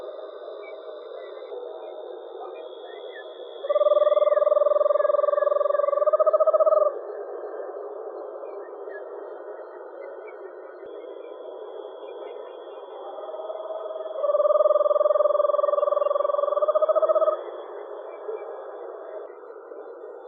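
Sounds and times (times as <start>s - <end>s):
Eastern screech owl delivering a low pulsed trill: 3.6s - 7.0s, 13.6s - 17.5s.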